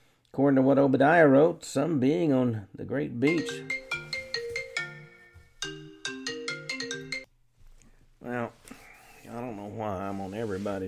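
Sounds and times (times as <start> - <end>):
speech: 0.4 - 3.8, 9.3 - 10.8
bright electronic phone ringtone jingle: 3.3 - 7.3.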